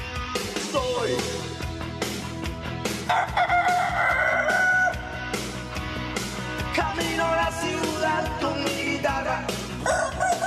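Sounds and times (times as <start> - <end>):
rhythmic music with sharp percussive hits: 0.0 - 10.4
speech: 0.4 - 1.6
rooster crowing: 3.1 - 5.1, 9.8 - 10.4.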